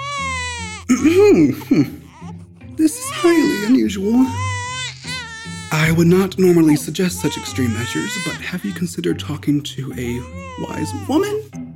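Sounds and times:
infant crying: 0.0s - 6.0s, 7.0s - 8.9s, 10.1s - 11.3s
speech: 0.9s - 2.0s, 2.8s - 4.5s, 5.7s - 11.6s.

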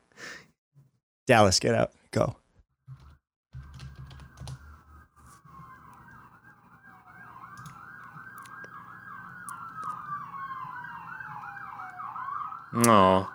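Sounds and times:
speech: 1.3s - 2.4s, 12.8s - 13.3s
emergency vehicle siren wailing: 3.7s - 13.3s
faint clicking: 5.2s - 13.0s.

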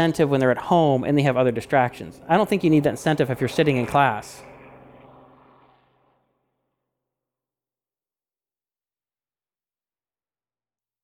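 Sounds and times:
speech: 0.0s - 4.5s
airplane flying overhead: 0.0s - 6.4s.

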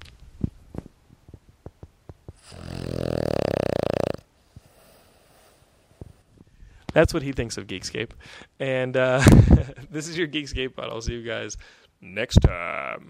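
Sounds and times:
dog snoring: 2.4s - 5.7s
speech: 7.0s - 13.0s.

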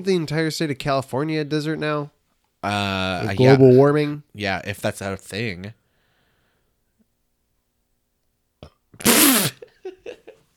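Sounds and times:
speech: 0.0s - 5.8s, 9.0s - 9.5s
short breathy burp: 8.6s - 9.6s.

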